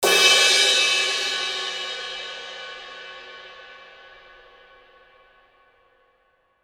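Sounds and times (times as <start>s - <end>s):
cymbal crash: 0.0s - 5.2s.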